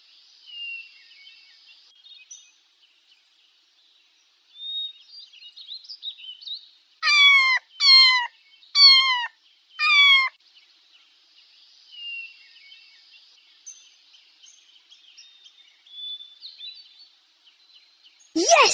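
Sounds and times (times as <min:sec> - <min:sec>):
cat meowing with drawn-out falling cries: 0:07.0 - 0:10.3
faint high bird twittering: 0:07.0 - 0:10.3
speech: 0:18.4 - 0:18.7.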